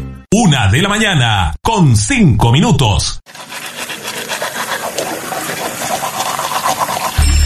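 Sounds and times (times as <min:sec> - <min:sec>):
speech: 0:00.5 - 0:03.6
toothbrush scrubbing teeth: 0:03.2 - 0:07.4
tap running: 0:03.3 - 0:07.2.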